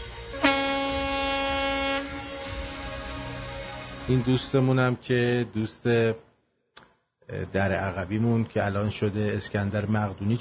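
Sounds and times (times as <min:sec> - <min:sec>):
horn blast: 0:00.0 - 0:04.6
speech: 0:04.1 - 0:06.3, 0:07.3 - 0:10.4.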